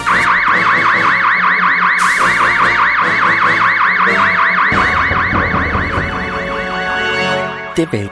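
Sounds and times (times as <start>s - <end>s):
starship red alert alarm with fast electronic whooping tone: 0.0s - 6.5s
speech: 7.8s - 8.1s.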